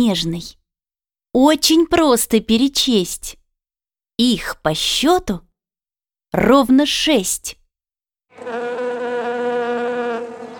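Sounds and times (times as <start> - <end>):
speech: 0.0 - 0.6, 1.3 - 3.4, 4.2 - 5.5, 6.3 - 7.6, 8.4 - 8.8
bee buzzing: 8.3 - 10.5.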